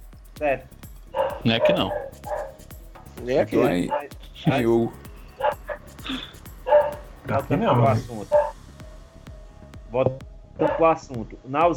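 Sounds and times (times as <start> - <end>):
speech: 0.4 - 0.8, 1.4 - 2.4, 3.2 - 5.0, 7.3 - 8.5, 9.9 - 11.7
dog barking short sharp yaps: 1.1 - 2.7, 3.8 - 4.2, 5.4 - 5.9, 6.6 - 8.6, 10.6 - 10.9.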